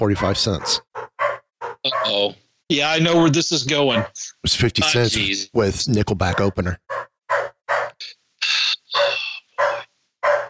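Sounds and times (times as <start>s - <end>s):
speech: 0.0s - 0.9s, 1.8s - 7.0s
dog barking: 0.0s - 2.3s, 3.9s - 4.2s, 6.2s - 8.0s, 8.9s - 10.4s.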